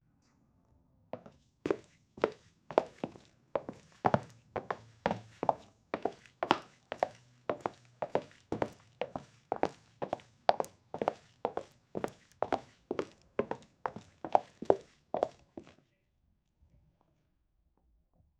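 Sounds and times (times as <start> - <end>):
high heels walking: 1.7 - 15.4.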